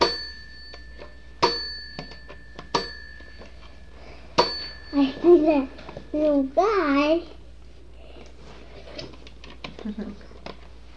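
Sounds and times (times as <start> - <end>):
doorbell chime ringing with bright metallic dings: 0.0 - 6.5
speech: 4.9 - 7.4, 9.8 - 10.2.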